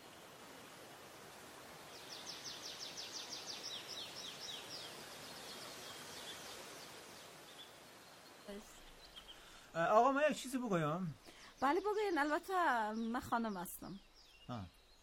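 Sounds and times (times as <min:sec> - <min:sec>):
water rushing: 0:00.0 - 0:11.0
wind: 0:00.0 - 0:15.0
bird singing repeated high chirps: 0:01.9 - 0:15.0
speech: 0:08.5 - 0:08.8, 0:09.8 - 0:14.8.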